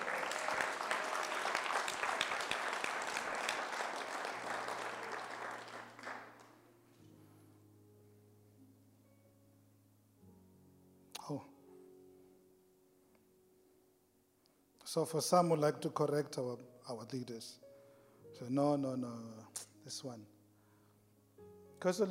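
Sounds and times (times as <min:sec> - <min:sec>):
crowd clapping: 0:00.0 - 0:06.6
speech: 0:11.3 - 0:11.5, 0:14.9 - 0:17.6, 0:18.3 - 0:20.4, 0:21.8 - 0:22.1.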